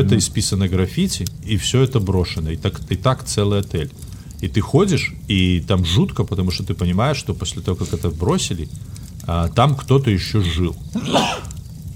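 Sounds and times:
speech: 0.0 - 11.5
person sneezing: 11.0 - 11.5.

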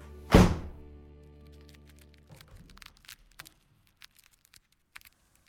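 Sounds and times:
door slamming shut: 0.3 - 0.9.

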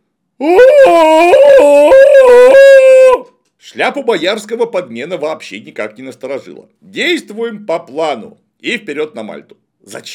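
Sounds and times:
speech: 0.4 - 1.4, 3.8 - 10.1
woman howling in a film scene: 0.4 - 3.3.

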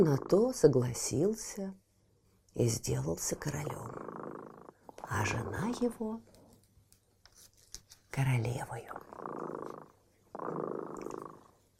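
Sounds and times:
cat purring: 0.0 - 1.6, 2.6 - 6.6, 8.4 - 11.7
speech: 0.0 - 1.8, 2.6 - 6.3, 8.2 - 11.4.

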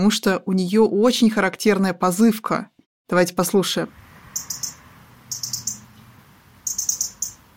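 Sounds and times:
speech: 0.0 - 4.6
soft low outdoor rumble: 3.9 - 7.5
European robin metallic tick calls: 4.4 - 7.4.

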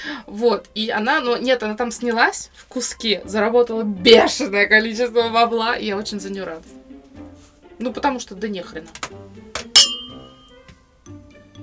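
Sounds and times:
speech: 0.0 - 6.8, 7.8 - 9.9
glass clinking while pouring a drink: 9.6 - 10.6.

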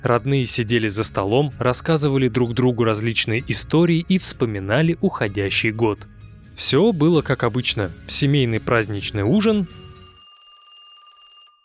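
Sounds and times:
speech: 0.0 - 9.8
telephone ringing with bright trilling electronic bell: 9.4 - 11.6.

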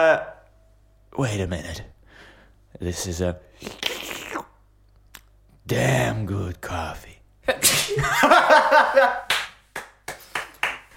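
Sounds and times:
speech: 0.0 - 0.4, 1.1 - 2.0, 2.7 - 3.9, 5.7 - 9.2
sneeze: 3.6 - 4.6, 7.6 - 8.0
laughter: 7.9 - 9.3
hand claps: 9.2 - 10.9.

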